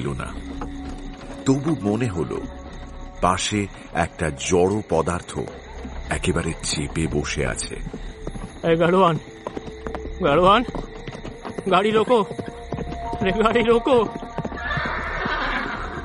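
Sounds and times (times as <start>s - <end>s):
speech: 0.0s - 0.8s, 1.5s - 2.6s, 3.2s - 9.3s, 10.2s - 10.9s, 11.6s - 12.4s, 13.2s - 14.2s
two carriage horses' hooves clip-clopping on a road: 0.0s - 3.1s, 5.2s - 16.0s
carriage horse whinnying high and wavering: 14.4s - 16.0s.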